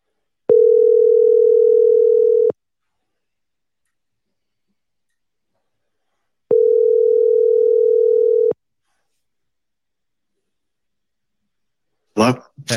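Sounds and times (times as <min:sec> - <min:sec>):
outgoing phone call electronic ringback tone: 0:00.5 - 0:02.6, 0:06.5 - 0:08.6
speech: 0:12.2 - 0:12.7.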